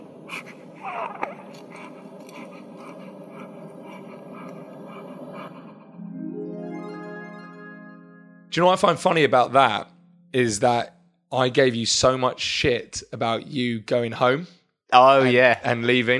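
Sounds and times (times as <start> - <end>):
newborn baby breathing: 0.2 - 6.0
speech: 0.3 - 1.9, 8.5 - 16.1
newborn baby tiny squeak: 0.8 - 1.9
faint rising tone: 5.7 - 11.5.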